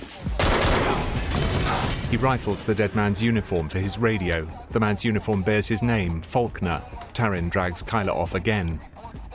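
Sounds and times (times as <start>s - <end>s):
pistol gunshots fired on police officers in a corridor: 0.4s - 2.1s
speech: 2.1s - 8.9s.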